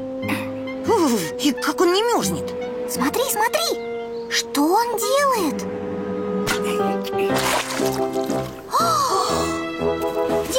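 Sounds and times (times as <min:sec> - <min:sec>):
steady tonal musical background: 0:00.0 - 0:10.5
speech: 0:01.4 - 0:05.8, 0:06.6 - 0:10.5
cold water poured over a person: 0:07.2 - 0:08.7.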